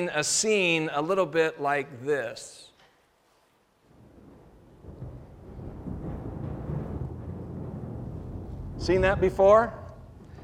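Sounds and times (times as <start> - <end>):
speech: 0.0 - 2.7, 8.8 - 9.8
faint wash of rain: 3.7 - 10.4
deep rolling rumble of thunder: 3.9 - 10.4.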